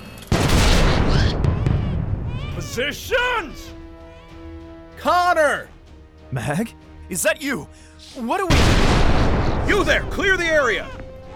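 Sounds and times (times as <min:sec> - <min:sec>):
sharp cracks of guardsmen opening fire: 0:00.0 - 0:02.2, 0:08.5 - 0:10.1
heavy blast from a battle tank and guardsmen opening fire: 0:00.3 - 0:02.4, 0:08.5 - 0:10.3
speech: 0:02.8 - 0:03.8, 0:05.0 - 0:05.7, 0:06.3 - 0:11.0.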